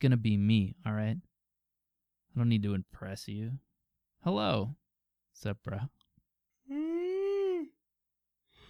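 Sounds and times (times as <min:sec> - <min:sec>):
speech: 0:00.0 - 0:01.3, 0:02.4 - 0:04.8, 0:05.4 - 0:06.0
long loud vocal yawn: 0:06.7 - 0:07.8.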